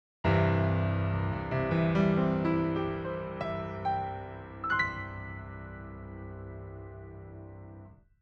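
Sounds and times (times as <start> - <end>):
basic dry piano: 0.2 - 8.1.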